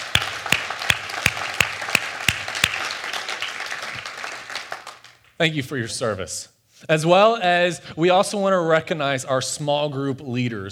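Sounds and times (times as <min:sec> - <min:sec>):
sharp evenly spaced rhythmic claps: 0:00.0 - 0:03.4
crowd applauding in a large room: 0:00.0 - 0:05.1
speech: 0:05.4 - 0:10.7.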